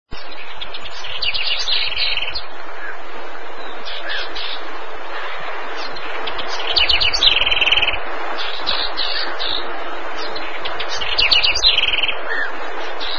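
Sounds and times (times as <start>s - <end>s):
common wren calling: 0.1s - 13.1s.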